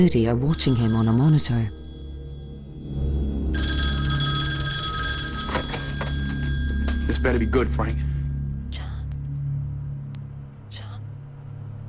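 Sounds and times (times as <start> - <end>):
speech: 0.0 - 1.8, 7.2 - 8.1
low rumbling hum: 0.0 - 11.8
loud telephone bell ringing: 0.4 - 8.5.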